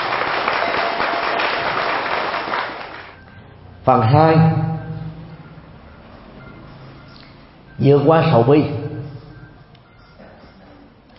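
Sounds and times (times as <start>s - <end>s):
crowd applauding: 0.0s - 3.2s
speech: 3.9s - 4.7s, 7.8s - 8.9s.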